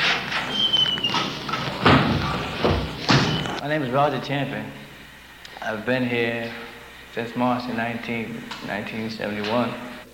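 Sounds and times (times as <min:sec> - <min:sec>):
door creaking: 0:00.0 - 0:03.6
steady hiss: 0:00.0 - 0:10.1
speech: 0:03.7 - 0:04.8, 0:05.6 - 0:06.6, 0:07.2 - 0:09.9.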